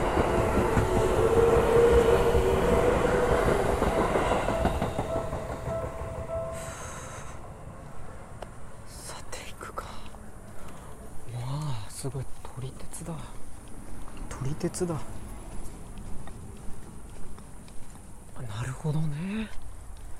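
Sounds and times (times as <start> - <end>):
train passing a station at night: 0.0 - 20.0
soft whispery voices: 8.8 - 13.5
speech: 14.6 - 15.2.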